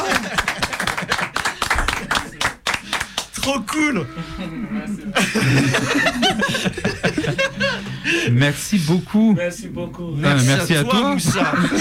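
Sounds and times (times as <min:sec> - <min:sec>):
laughter: 0:00.0 - 0:02.6, 0:04.1 - 0:08.4, 0:10.9 - 0:11.7
crowd applause: 0:00.0 - 0:03.8
speech: 0:03.4 - 0:11.7.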